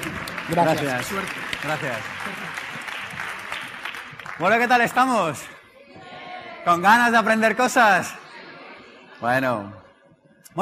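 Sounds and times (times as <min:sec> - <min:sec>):
audience applause: 0:00.0 - 0:05.4
speech: 0:00.5 - 0:02.6, 0:04.4 - 0:05.6, 0:06.6 - 0:08.2, 0:09.2 - 0:09.8.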